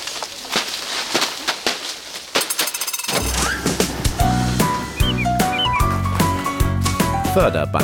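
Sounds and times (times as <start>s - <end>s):
apples thudding down from a shaken tree: 0.0s - 7.2s
music jingle with birdlike whistles: 4.6s - 6.1s.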